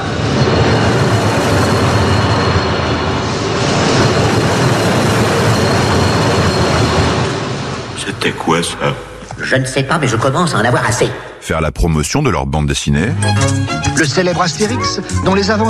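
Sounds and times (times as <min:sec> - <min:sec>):
Paris metro train rumbling past with rattling carriages: 0:00.0 - 0:11.0
speech: 0:08.3 - 0:15.6.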